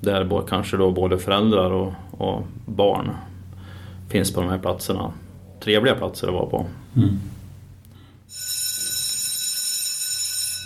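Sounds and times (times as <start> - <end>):
speech: 0.0 - 3.3, 4.1 - 7.4
low hum: 0.0 - 8.3
electric school bell ringing for recess: 8.3 - 10.6.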